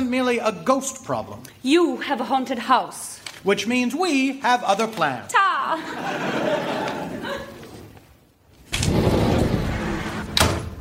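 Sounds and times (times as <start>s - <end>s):
speech: 0.1s - 6.8s
laughter: 5.7s - 8.0s
heavy door rumbling along its track: 8.7s - 10.8s.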